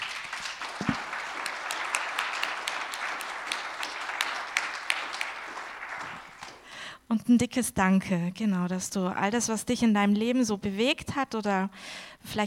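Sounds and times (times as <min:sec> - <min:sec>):
sharp individual claps: 0:00.0 - 0:06.7
group applauding: 0:00.0 - 0:06.9
speech: 0:07.1 - 0:12.4.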